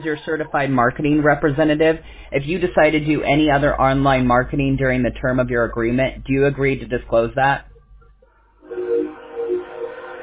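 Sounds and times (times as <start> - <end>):
speech: 0.0 - 7.7
train passing on railroad track: 8.6 - 10.2.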